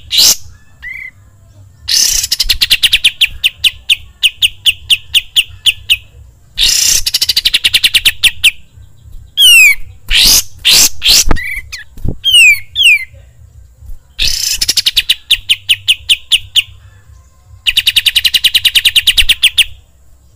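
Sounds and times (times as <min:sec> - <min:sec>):
bulbul song with whistle, rattling trills and harsh bursts: 0:00.0 - 0:20.3.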